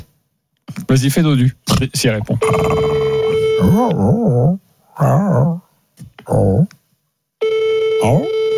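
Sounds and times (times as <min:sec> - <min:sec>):
speech: 0:00.9 - 0:03.0, 0:03.6 - 0:05.6, 0:06.3 - 0:06.8, 0:08.0 - 0:08.4
person imitating a howling dog as a phone message: 0:03.6 - 0:05.7.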